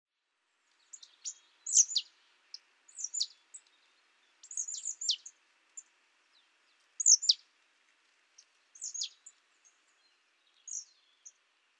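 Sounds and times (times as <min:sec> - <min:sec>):
faint hiss: 0:00.2 - 0:11.7
marsh tit Poecile palustris calling: 0:00.9 - 0:02.1, 0:03.0 - 0:03.3, 0:04.4 - 0:05.3, 0:07.0 - 0:07.4, 0:08.8 - 0:09.2.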